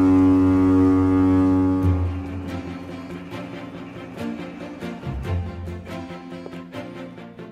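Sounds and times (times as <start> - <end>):
deep loud foghorn blast: 0.0 - 5.6.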